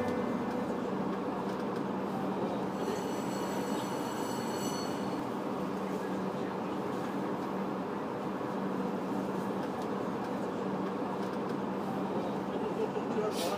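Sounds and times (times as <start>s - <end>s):
thin high whine: 0.0s - 1.1s
subway train wheels and motor rumbling on Line 2 in Beijing: 0.0s - 13.5s.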